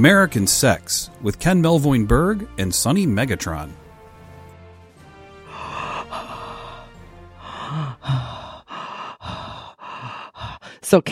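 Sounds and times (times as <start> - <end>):
speech: 0.0 - 3.8, 10.9 - 11.1
heavy rhythmic panting breaths: 5.4 - 11.0.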